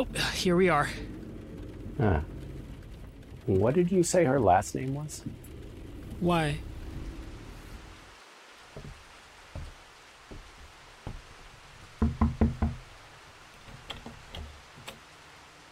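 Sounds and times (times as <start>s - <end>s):
speech: 0.0s - 1.1s, 2.0s - 2.3s, 3.5s - 5.4s, 6.2s - 6.7s
steady rain: 0.0s - 15.7s
knocks on a door: 8.8s - 11.3s, 12.0s - 12.8s.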